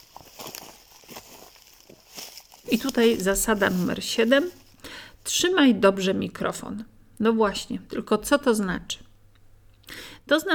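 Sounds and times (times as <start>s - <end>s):
footsteps crunching and scuffing: 0.0s - 5.2s
rustling noise: 0.0s - 5.5s
speech: 2.7s - 4.6s, 5.3s - 9.1s, 10.3s - 10.5s.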